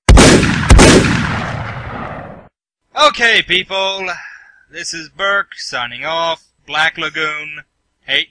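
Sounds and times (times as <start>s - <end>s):
gunshots: 0.1s - 2.5s
speech: 3.0s - 8.2s.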